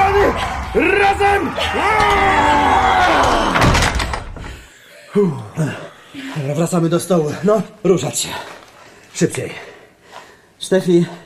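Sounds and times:
speech: 0.4 - 3.0, 5.2 - 8.6, 9.2 - 9.7, 10.6 - 11.2
heavy door groaning and grinding as people push it shut: 1.9 - 4.6.

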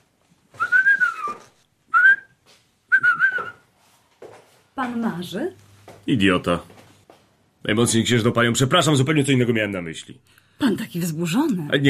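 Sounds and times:
man whistling a tune: 0.6 - 3.6
speech: 4.8 - 6.7, 7.6 - 11.8.

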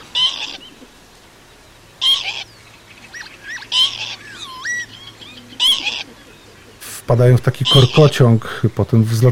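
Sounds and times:
northern lapwing wheezy display calls: 0.0 - 8.3
speech: 7.1 - 9.3.

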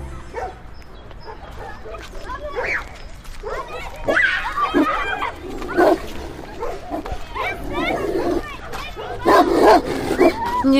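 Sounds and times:
dog barking and yapping: 0.3 - 0.6, 1.2 - 2.8, 3.4 - 3.9, 4.7 - 10.4
people's voices murmuring: 1.4 - 10.7.

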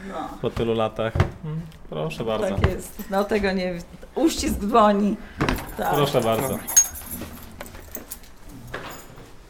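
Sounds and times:
speech: 0.1 - 7.3
keys jangling as they are handed over: 5.7 - 9.2.

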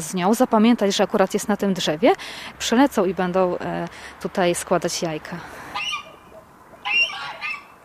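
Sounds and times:
speech: 0.0 - 5.6
farmyard geese honking squawks in a pen: 5.5 - 7.8
green-legged hens and bantam chickens clucking in a pen: 5.5 - 7.8.

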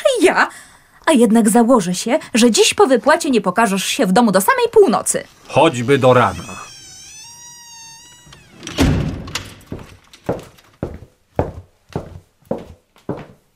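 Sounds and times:
speech: 0.3 - 6.7
door shutting with a heavy thud: 5.4 - 10.8
sustained high tone: 5.6 - 8.8
firm footsteps: 9.2 - 13.4.

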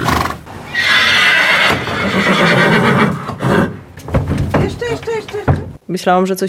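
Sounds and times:
agitated loose horse on a street snorting and whinnying: 0.0 - 3.9
horse hooves clopping on a street: 1.5 - 5.8
speech: 5.9 - 6.4.

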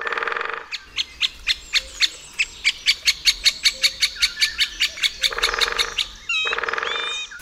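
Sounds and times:
harsher buzzy woodpecker calls: 0.0 - 7.4
woodpecker calling with loud ringing notes: 1.6 - 7.4.

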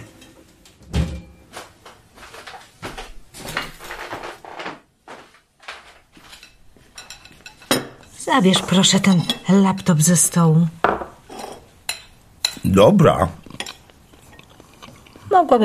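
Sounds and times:
cutlery and dishes clinking in a kitchen: 6.2 - 12.7, 13.5 - 13.9
speech: 8.3 - 10.8, 12.6 - 13.4, 15.4 - 15.6.

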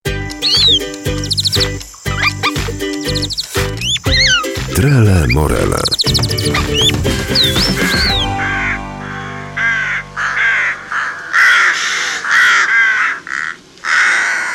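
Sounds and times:
chirpy whistles and tones: 0.4 - 8.4
speech: 4.8 - 7.5
corvid cawing: 9.7 - 14.5.

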